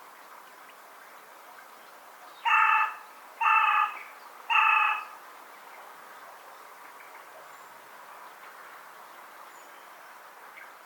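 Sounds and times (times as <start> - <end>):
Carrion crow cawing: 2.5 - 5.1.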